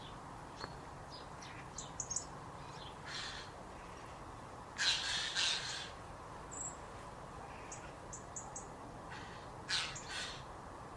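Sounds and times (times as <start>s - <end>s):
background hiss: 0.0s - 10.9s
Eurasian jay rasping screech and harsh grating calls: 2.0s - 4.2s, 4.8s - 6.0s, 9.1s - 10.5s.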